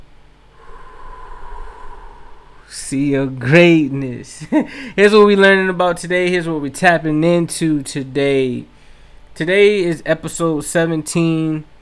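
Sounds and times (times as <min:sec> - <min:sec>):
person inhaling and exhaling deeply during a guided group breathing moment: 0:00.4 - 0:02.9
speech: 0:02.7 - 0:08.8, 0:09.4 - 0:11.7.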